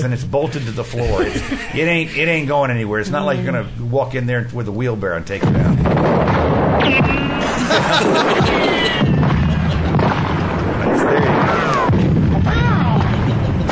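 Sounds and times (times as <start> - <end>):
speech: 0.0 - 5.9, 6.8 - 9.2
laughter: 1.0 - 2.6, 7.4 - 10.1
loud dense background of booms and clatter: 5.3 - 13.6
bullet ricochets from a real gun with sliding whine: 5.9 - 7.4, 9.0 - 13.6.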